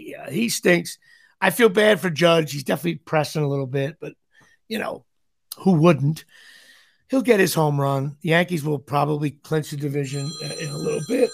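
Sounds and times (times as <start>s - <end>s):
speech: 0.3s - 11.3s
telephone ringing with a high electronic tone: 10.0s - 11.3s.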